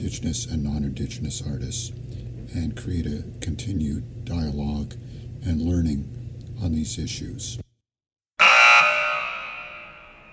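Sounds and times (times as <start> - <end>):
speech: 0.1 - 7.6
loud buzzer: 8.4 - 10.3.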